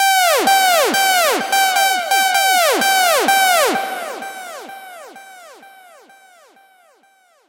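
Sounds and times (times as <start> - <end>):
synthesizer siren: 0.0 - 5.9.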